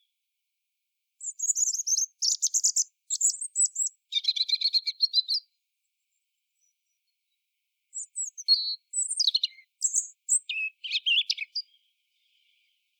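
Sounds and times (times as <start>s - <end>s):
European robin Erithacus rubecula song: 1.2s - 5.6s, 6.6s - 12.9s.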